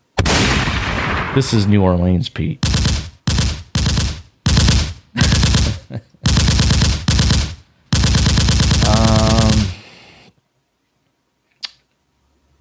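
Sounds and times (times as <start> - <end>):
rapid gunfire: 0.2 - 1.7, 2.6 - 9.9
sharp crack: 0.2 - 1.9, 2.6 - 9.8
speech: 1.3 - 2.7
laughter: 5.2 - 6.3.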